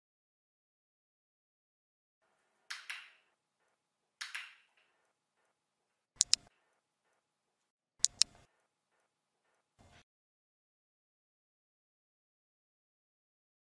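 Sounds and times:
dog training clicker clicking: 6.2s - 6.5s, 8.0s - 8.3s.

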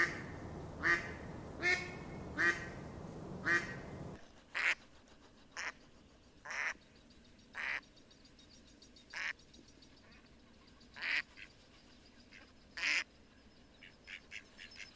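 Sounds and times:
mallard quacking: 0.0s - 2.8s, 3.4s - 3.8s
light background noise: 0.0s - 14.9s.

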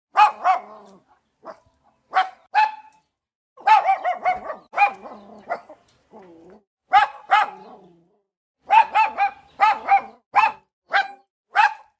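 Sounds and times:
small dog barking angrily: 0.1s - 3.0s, 3.6s - 5.8s, 6.9s - 8.0s, 8.6s - 11.9s.

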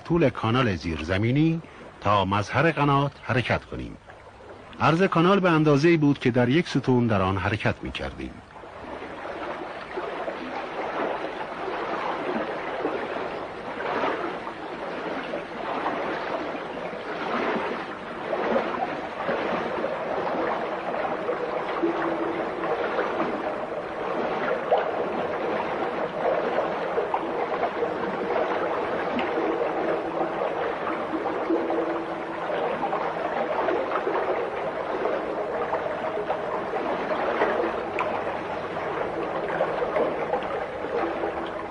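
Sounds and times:
very cold water rushing and splashing in underground qanat channel: 0.0s - 41.7s
speech: 0.1s - 4.0s, 4.8s - 8.5s.

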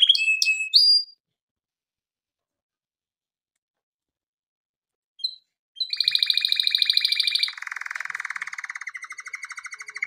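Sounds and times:
canary trilling: 0.0s - 1.2s, 5.2s - 10.0s.

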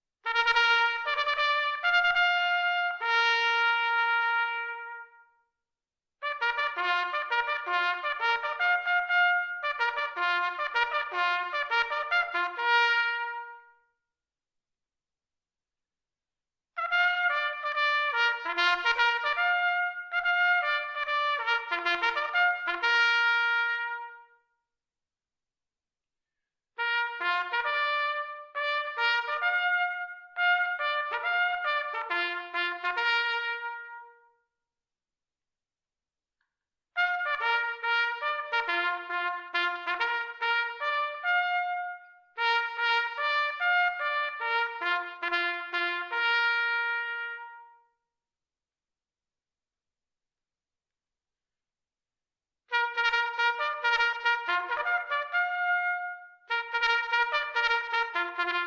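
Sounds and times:
war trumpets: 0.2s - 5.3s, 6.2s - 13.8s, 16.8s - 24.4s, 26.8s - 34.4s, 37.0s - 47.9s, 52.7s - 58.6s.

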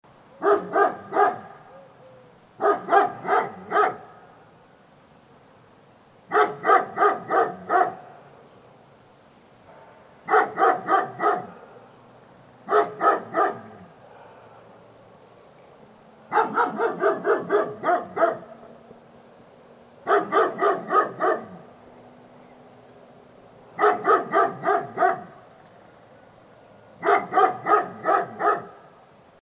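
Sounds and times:
dog: 0.4s - 1.6s, 2.6s - 4.1s, 6.3s - 8.0s, 9.7s - 11.8s, 12.7s - 14.6s, 16.3s - 18.5s, 20.1s - 21.6s, 23.8s - 25.3s, 27.0s - 28.8s.

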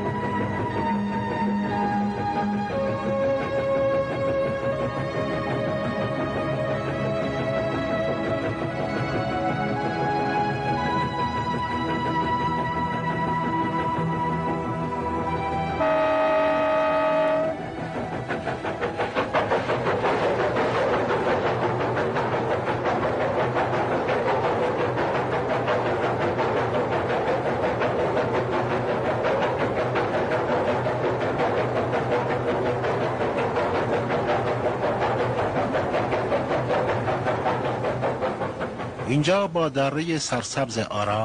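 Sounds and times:
train clattering on tracks: 0.0s - 41.2s
train horn blast: 15.8s - 17.6s
speech: 39.2s - 41.2s.

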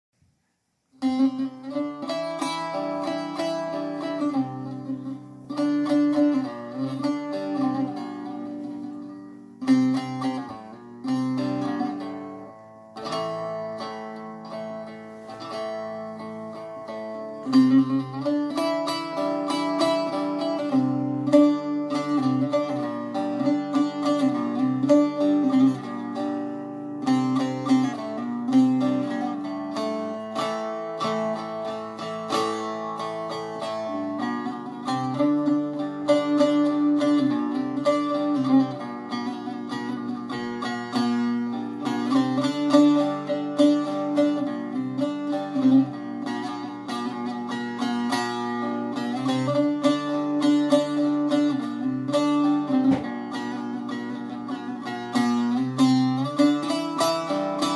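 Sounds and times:
baglama playing: 1.0s - 57.7s.

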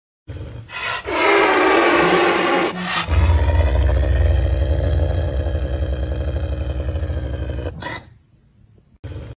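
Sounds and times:
wild cat sounds: 0.7s - 8.1s.

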